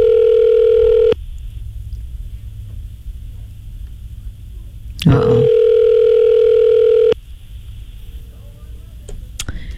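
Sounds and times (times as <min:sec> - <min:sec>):
unanswered phone call ringback tones: 0:00.0 - 0:01.2, 0:05.2 - 0:07.2
person speaking: 0:05.0 - 0:05.6.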